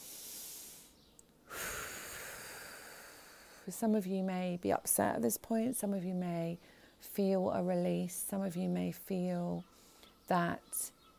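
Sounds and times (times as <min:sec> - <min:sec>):
deep breath during a guided relaxation exercise: 0:00.0 - 0:03.7, 0:09.7 - 0:10.2
speech: 0:03.7 - 0:09.7, 0:10.3 - 0:11.0.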